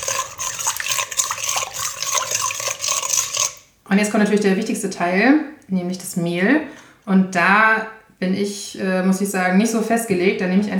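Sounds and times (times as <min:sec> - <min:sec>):
lukewarm water and yeast stirred for bread dough: 0:00.0 - 0:04.7
speech: 0:03.9 - 0:10.7.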